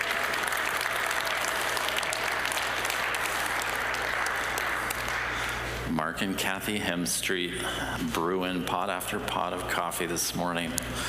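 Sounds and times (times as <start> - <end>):
roomful of people applauding for volunteers: 0.0 - 5.8
speech: 6.1 - 11.0.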